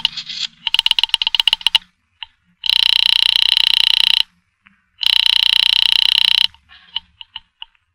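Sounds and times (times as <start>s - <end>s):
telephone ringing: 0.0s - 1.9s, 2.6s - 4.3s, 5.0s - 7.3s
pay phone dialing clicks: 0.0s - 4.3s, 5.0s - 7.8s.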